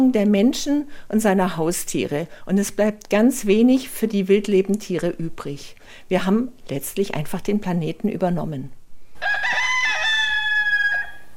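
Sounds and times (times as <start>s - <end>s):
speech: 0.0s - 9.6s
rooster crowing: 9.1s - 11.3s.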